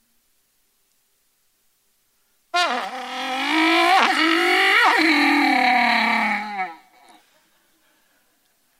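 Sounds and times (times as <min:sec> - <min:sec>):
voice imitating a car engine: 0:02.6 - 0:07.2.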